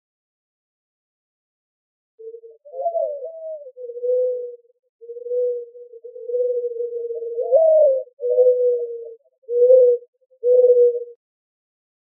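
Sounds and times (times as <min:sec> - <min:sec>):
mourning dove cooing in Arizona: 0:02.2 - 0:11.2.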